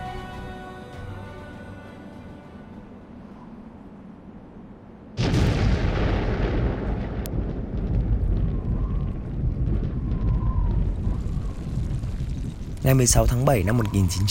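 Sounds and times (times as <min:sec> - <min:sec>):
atomic bomb explosion in a remote desert: 0:05.2 - 0:13.0
long loud deep roaring rumble: 0:05.2 - 0:13.4
speech: 0:12.9 - 0:14.2.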